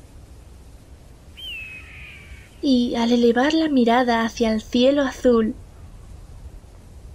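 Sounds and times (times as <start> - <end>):
steady low outdoor rumble: 0.0 - 7.1
eagle cry as an eagle flies over the desert: 1.4 - 2.7
speech: 2.6 - 5.6.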